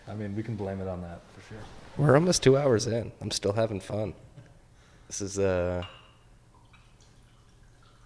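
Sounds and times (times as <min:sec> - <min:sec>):
low hum: 0:00.0 - 0:08.0
speech: 0:00.1 - 0:04.3, 0:05.1 - 0:06.0
mezcal pouring into a glass: 0:05.9 - 0:08.0.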